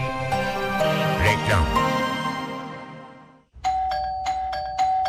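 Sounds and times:
musical tone: 0.1 - 3.3
doorbell chiming with a bright ding-dong tone: 3.6 - 5.0.

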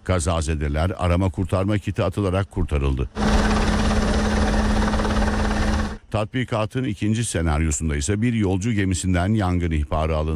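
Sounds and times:
speech: 0.1 - 3.5, 6.1 - 10.3
constant low hum: 3.1 - 6.1
helicopters in a sea search-and-rescue drill: 3.2 - 6.0.

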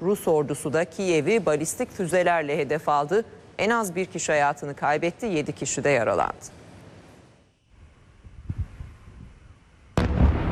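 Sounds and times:
speech: 0.0 - 6.6
dull booms: 10.0 - 10.5
loud roaring blast: 10.0 - 10.5.

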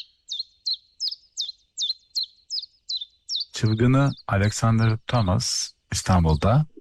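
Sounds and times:
booted eagle whistled calls in Iran: 0.0 - 4.2
speech: 3.6 - 6.7.

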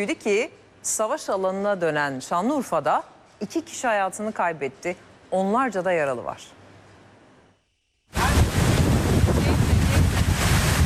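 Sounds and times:
speech: 0.0 - 6.6
strong storm wind with tornado during a severe storm: 8.1 - 10.8.

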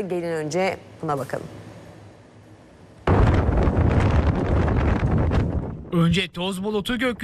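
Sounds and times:
speech: 0.0 - 1.6, 5.9 - 7.2
rumbling wind gusts battering the microphone: 3.1 - 6.0
strong wind in Istanbul from a cold air wave from the Balkans: 3.1 - 7.2.

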